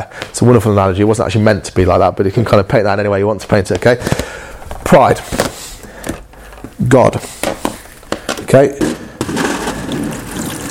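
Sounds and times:
speech: 0:00.0 - 0:05.5, 0:06.8 - 0:07.5, 0:08.5 - 0:08.9
steady stream of water pouring: 0:09.4 - 0:10.6.

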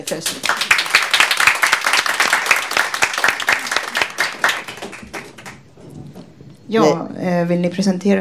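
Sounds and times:
speech: 0:00.0 - 0:00.8, 0:06.7 - 0:08.2
audience applause welcoming a women's theatre group: 0:00.0 - 0:05.7.

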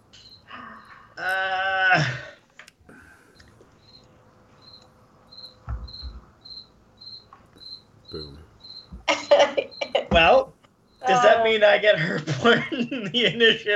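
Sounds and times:
cricket chirping: 0:00.0 - 0:02.3, 0:02.9 - 0:13.7
speech: 0:01.2 - 0:02.2, 0:11.1 - 0:13.7
laughter: 0:01.3 - 0:02.4, 0:09.1 - 0:10.4, 0:11.1 - 0:13.7.

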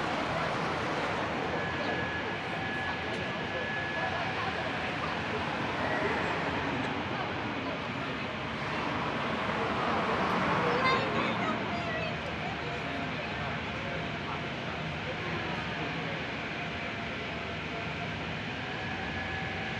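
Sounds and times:
cars passing on a busy city avenue: 0:00.0 - 0:19.7
faint voices: 0:00.0 - 0:19.7.

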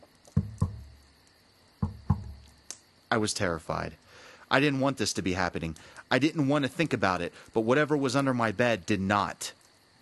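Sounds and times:
dull hollow knocks on a wooden headboard: 0:00.4 - 0:00.9, 0:01.8 - 0:02.4
speech: 0:03.1 - 0:09.6.

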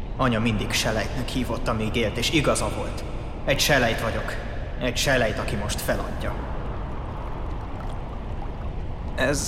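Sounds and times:
speech: 0:00.2 - 0:06.5, 0:09.2 - 0:09.4
small stream of water trickling through a dried-out riverbed: 0:05.7 - 0:09.4.

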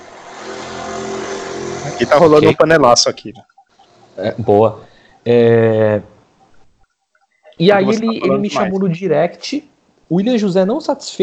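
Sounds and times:
motorcycle engine passing by outside: 0:00.0 - 0:02.4
speech: 0:02.0 - 0:03.5, 0:04.2 - 0:06.1, 0:07.6 - 0:11.2.

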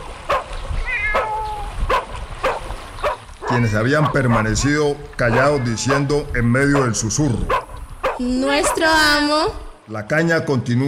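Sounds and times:
dog barking: 0:00.3 - 0:00.5, 0:01.1 - 0:06.1, 0:06.7 - 0:08.9
cat meowing: 0:00.7 - 0:01.8, 0:03.4 - 0:03.9, 0:05.2 - 0:06.2
speech: 0:03.5 - 0:07.6, 0:08.2 - 0:10.8.

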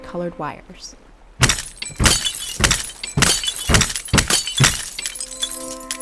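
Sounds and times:
speech: 0:00.1 - 0:01.0
glass lens shards tinkling and ringing: 0:01.4 - 0:06.0
glass lenses crushed underfoot on the East River bank: 0:01.4 - 0:06.0.

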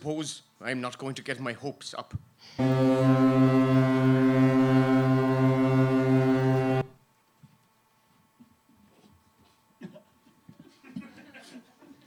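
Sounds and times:
speech: 0:00.0 - 0:04.5
deep ship's horn blasting as vessel docks in Irish waters: 0:02.6 - 0:07.0.

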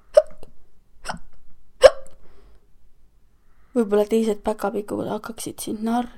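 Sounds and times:
person demonstrating hiccups: 0:00.1 - 0:00.4, 0:01.0 - 0:02.2
speech: 0:03.8 - 0:06.1.

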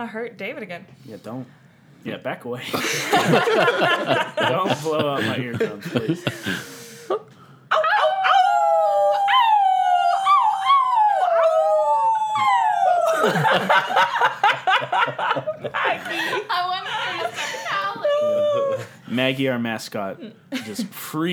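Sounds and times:
speech: 0:00.0 - 0:07.3, 0:19.2 - 0:21.3
people laughing: 0:02.6 - 0:21.2
people chattering: 0:02.6 - 0:21.3
people howling: 0:02.8 - 0:06.7, 0:07.7 - 0:19.1.

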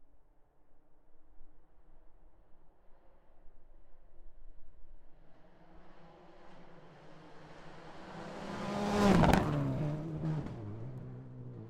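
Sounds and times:
car passing by during tire testing: 0:05.4 - 0:11.6
tire noise: 0:05.6 - 0:11.6.

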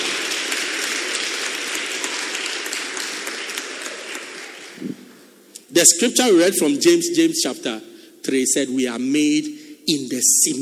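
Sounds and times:
crowd of people clapping: 0:00.0 - 0:05.1
speech: 0:05.8 - 0:10.6.

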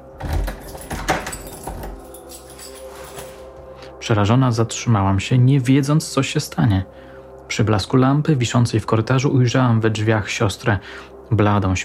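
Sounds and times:
door creaking open slowly: 0:00.2 - 0:02.0
speech: 0:04.1 - 0:11.8.

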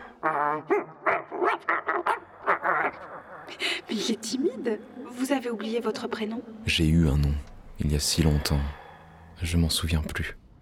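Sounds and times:
speech: 0:00.2 - 0:02.1, 0:03.5 - 0:08.8, 0:09.4 - 0:10.6
dog barking and yipping: 0:00.7 - 0:02.2.

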